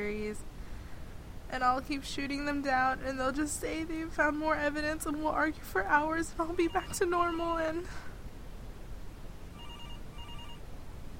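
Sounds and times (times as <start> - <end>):
speech: 0.0 - 0.5, 1.5 - 8.1
hiss: 0.0 - 11.1
telephone ringing: 6.6 - 7.1, 9.5 - 10.7.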